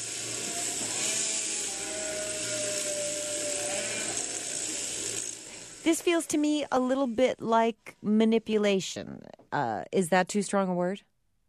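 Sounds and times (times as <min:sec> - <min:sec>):
electric clippers buzzing and whining during sheep shearing on a farm: 0:00.0 - 0:06.9
long drawn-out sheep bleat on a farm: 0:01.0 - 0:04.8
speech: 0:05.8 - 0:11.1.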